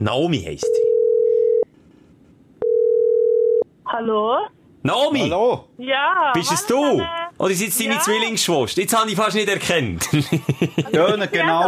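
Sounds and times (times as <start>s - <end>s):
speech: 0.0s - 0.9s, 4.0s - 11.6s
telephone ringing tone during outgoing call: 0.8s - 1.6s, 2.6s - 3.6s
laughter: 10.0s - 11.6s.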